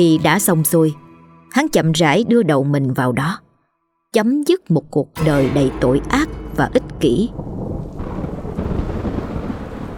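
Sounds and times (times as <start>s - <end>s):
speech: 0.0s - 3.4s, 4.1s - 7.4s
thunder rumbling in a thunderstorm: 5.2s - 9.9s
heavy rain pouring in a thunderstorm: 5.7s - 9.9s.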